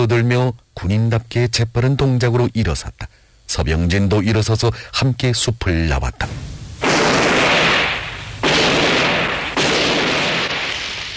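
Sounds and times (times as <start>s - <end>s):
speech: 0.0s - 6.6s
old-fashioned gunshots fired in succession: 6.8s - 11.1s.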